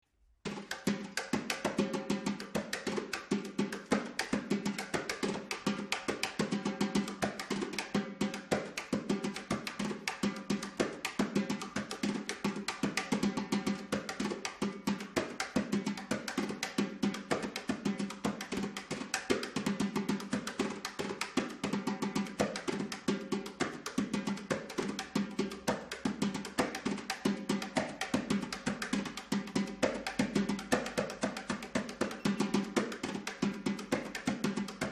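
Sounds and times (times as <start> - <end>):
repique drum played by hand: 0.4 - 34.8.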